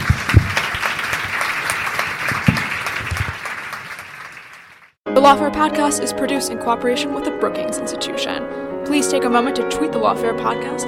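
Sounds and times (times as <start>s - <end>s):
audience clapping: 0.0s - 5.0s
speech: 5.2s - 10.8s.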